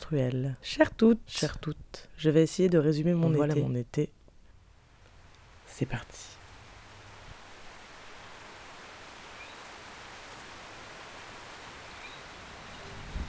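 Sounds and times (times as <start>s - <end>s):
speech: 0.1s - 4.2s, 5.8s - 6.4s
steady rain falling: 3.4s - 13.2s.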